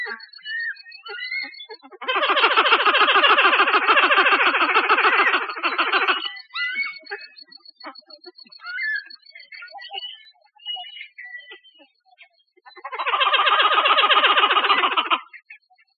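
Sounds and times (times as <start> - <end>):
pied-billed grebe call: 0.0 - 7.4, 12.8 - 15.5
pied-billed grebe soft clucks and short notes: 1.0 - 15.9.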